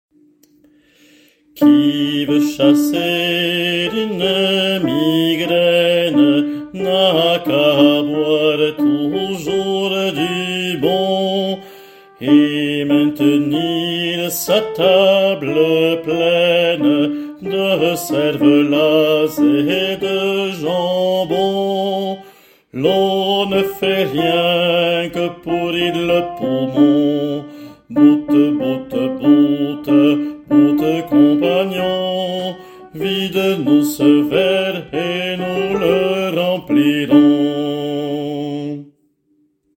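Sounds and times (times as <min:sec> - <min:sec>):
alto voice singing a drinking song: 0:01.6 - 0:38.9.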